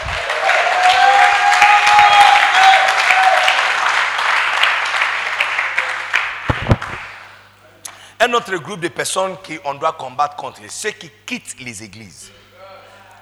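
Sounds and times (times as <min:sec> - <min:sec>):
audience applauding: 0:00.0 - 0:07.3
speech: 0:08.2 - 0:12.4.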